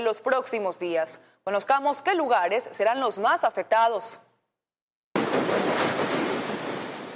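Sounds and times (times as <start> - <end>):
speech: 0.0 - 4.3
heavy ocean surf crashing against the shore: 5.2 - 7.1.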